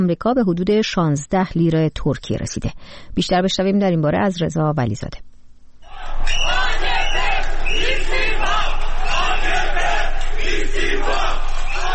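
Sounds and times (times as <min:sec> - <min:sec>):
speech: 0:00.0 - 0:05.3
crowd of protesters chanting demanding resignation: 0:05.8 - 0:11.9.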